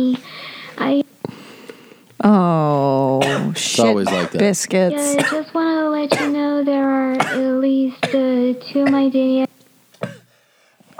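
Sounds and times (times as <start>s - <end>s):
speech: 0.0s - 1.1s, 2.2s - 6.4s, 7.2s - 9.5s
sharp coughs with voiced rasp: 3.0s - 6.5s, 7.1s - 9.1s, 10.0s - 10.3s.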